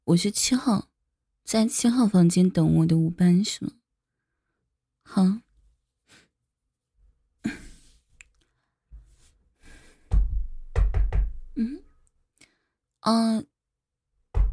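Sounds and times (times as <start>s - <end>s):
speech: 0.1s - 3.8s, 5.0s - 5.4s, 11.6s - 11.8s, 13.0s - 13.5s
knocking on the door of a room: 10.1s - 11.6s, 14.3s - 14.5s.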